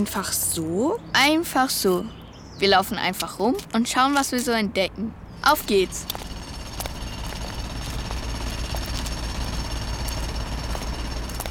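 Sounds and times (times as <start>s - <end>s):
speech: 0.0s - 6.3s
deep rumbling engine drone: 5.7s - 11.4s.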